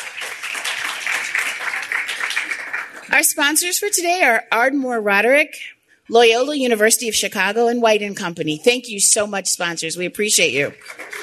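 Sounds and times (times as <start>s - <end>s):
audience applause for the staff: 0.0s - 3.1s, 10.8s - 11.2s
speech: 3.1s - 11.2s.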